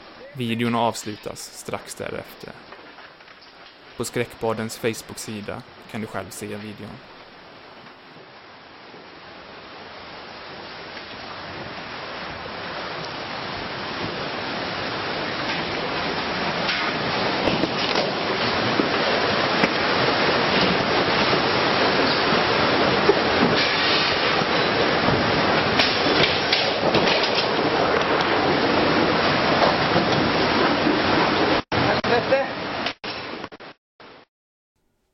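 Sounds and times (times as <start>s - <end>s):
tsunami floodwater surging and rushing into a restaurant: 0.0s - 33.3s
indistinct voices: 0.2s - 2.6s
speech: 0.4s - 2.8s, 4.0s - 7.2s.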